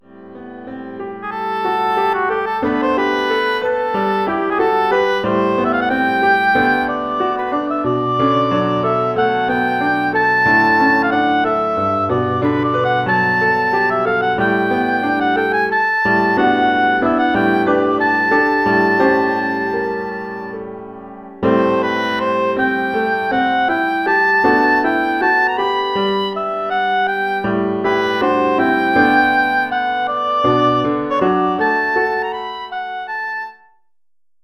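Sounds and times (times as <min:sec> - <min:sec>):
oboe solo over a PA system: 0:01.2 - 0:20.8, 0:21.4 - 0:33.7.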